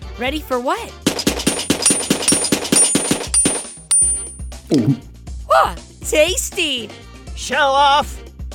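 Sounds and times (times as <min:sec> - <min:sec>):
speech: 0:00.2 - 0:01.2, 0:04.7 - 0:08.2
toy marshmallow gun firing rapidly: 0:01.1 - 0:03.6.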